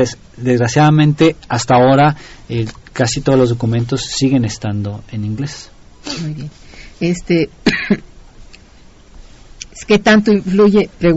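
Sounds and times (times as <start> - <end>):
speech: 0.0 - 8.1, 9.8 - 11.1
person coughing: 7.6 - 8.1.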